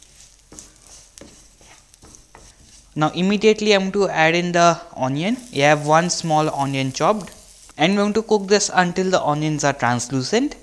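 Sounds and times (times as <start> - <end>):
faint scraping strokes of stirring in a pan: 0.0 - 3.0
garlic, ginger, sesame seeds and red chili flakes sizzling in moderately hot oil in a pan: 0.0 - 3.6, 5.1 - 10.6
speech: 3.0 - 10.6.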